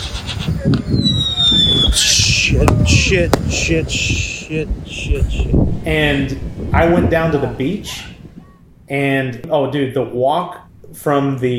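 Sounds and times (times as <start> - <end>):
indistinct voices murmuring: 0.0 - 8.8
speech: 0.5 - 1.4, 2.0 - 8.1, 8.9 - 11.5
thin firework whistle: 0.8 - 3.1
sharp firework bangs: 2.6 - 3.6.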